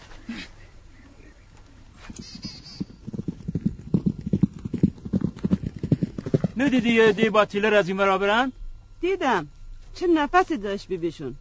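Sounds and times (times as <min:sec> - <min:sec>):
speech: 0:00.3 - 0:00.6, 0:06.6 - 0:11.3
horse galloping with a rider aboard: 0:02.1 - 0:07.5.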